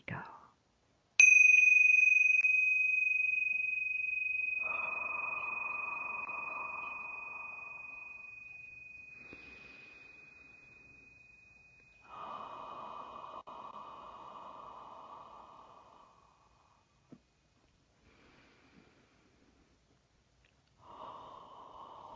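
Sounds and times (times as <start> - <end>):
tingsha bells ringing: 1.2 - 13.3
breathing: 4.6 - 17.0, 18.0 - 19.8, 20.8 - 22.1.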